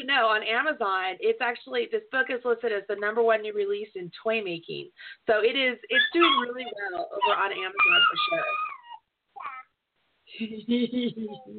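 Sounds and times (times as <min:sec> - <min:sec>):
speech: 0:00.0 - 0:08.7, 0:10.3 - 0:11.5
baby babbling excitedly at the sight of a cat: 0:05.9 - 0:09.8.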